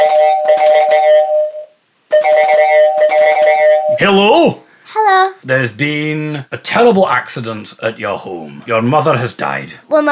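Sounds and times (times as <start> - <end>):
loud electronic phone ringtone: 0.0 - 4.1
speech: 4.0 - 10.0.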